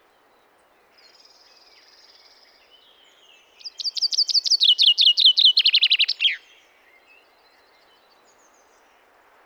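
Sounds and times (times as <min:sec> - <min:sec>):
common chaffinch Fringilla coelebs singing: 0:03.6 - 0:06.4.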